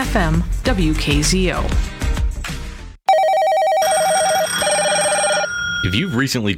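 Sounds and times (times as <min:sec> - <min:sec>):
music: 0:00.0 - 0:03.0
speech: 0:00.1 - 0:02.0, 0:05.8 - 0:06.5
telephone ringing with a warbling electronic trill: 0:03.1 - 0:06.4.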